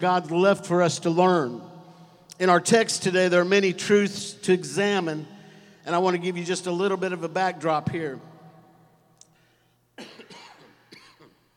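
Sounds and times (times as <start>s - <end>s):
speech: 0.0s - 1.7s, 2.4s - 8.3s
person coughing: 10.0s - 11.5s.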